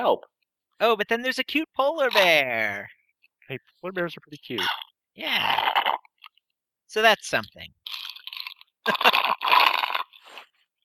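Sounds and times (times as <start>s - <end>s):
speech: 0.0s - 6.0s, 6.9s - 8.0s, 8.8s - 9.6s
wet slurping of a drink against the microphone: 7.8s - 10.6s.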